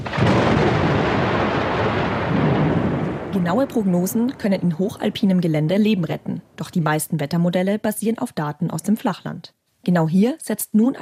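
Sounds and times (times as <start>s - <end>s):
loud deep roll of thunder: 0.0s - 7.0s
speech: 3.4s - 10.9s.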